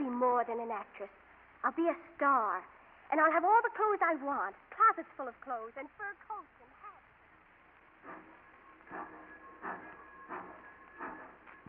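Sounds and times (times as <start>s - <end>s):
speech: 0.2s - 6.7s, 8.0s - 11.1s
steam train chugging away from a station: 7.7s - 11.6s.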